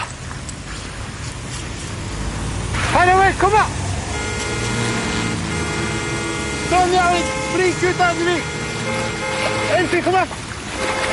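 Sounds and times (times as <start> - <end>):
cars passing on the busy E18 road: 0.0 - 11.1
speech: 3.3 - 3.8, 6.7 - 10.4
person calling out over the traffic: 6.6 - 8.5.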